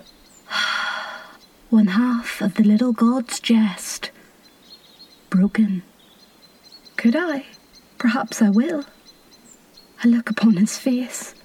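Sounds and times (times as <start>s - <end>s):
sharp breathy gasp: 0.5s - 1.4s
speech: 1.7s - 4.1s, 5.3s - 5.9s, 7.0s - 9.0s, 10.0s - 11.4s.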